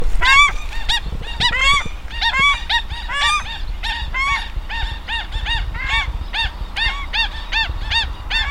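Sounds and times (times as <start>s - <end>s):
low background rumble: 0.0s - 8.4s
paradise shelduck honking calls from several overlapping birds: 0.0s - 8.4s.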